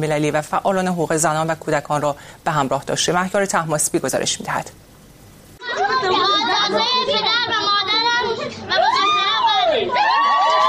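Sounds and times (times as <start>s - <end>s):
speech: 0.0s - 4.9s
crowd at a wedding celebration cheering and shouting: 5.6s - 10.6s.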